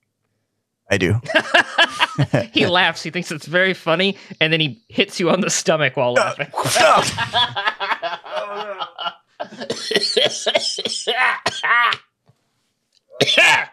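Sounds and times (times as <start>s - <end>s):
speech: 0.9s - 8.7s, 9.5s - 12.1s, 13.2s - 13.7s
laughter: 1.2s - 2.8s, 6.2s - 12.0s
man coughing and hacking in harsh throaty bursts: 6.2s - 7.6s, 8.3s - 12.1s, 13.1s - 13.7s.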